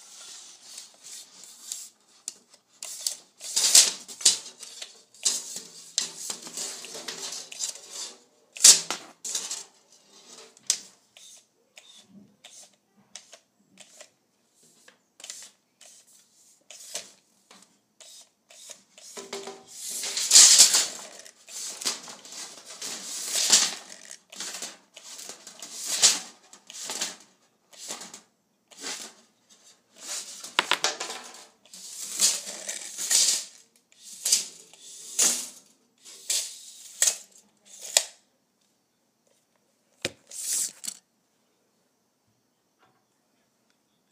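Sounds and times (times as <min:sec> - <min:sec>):
tape measure pulled out and handled: 0:00.1 - 0:09.6, 0:10.2 - 0:14.1, 0:15.2 - 0:17.2, 0:18.0 - 0:29.1, 0:31.6 - 0:38.2, 0:40.2 - 0:41.0.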